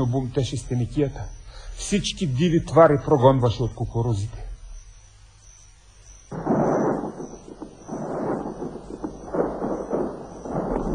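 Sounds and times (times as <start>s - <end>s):
speech: 0.0s - 4.4s
heavy rolling thunder of a summer storm: 6.3s - 10.9s.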